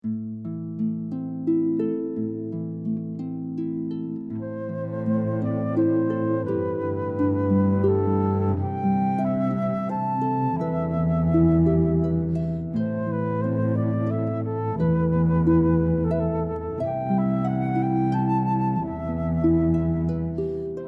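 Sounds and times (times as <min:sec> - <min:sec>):
harp: 0:00.0 - 0:20.8
flute: 0:03.8 - 0:20.8
cello: 0:04.3 - 0:20.8.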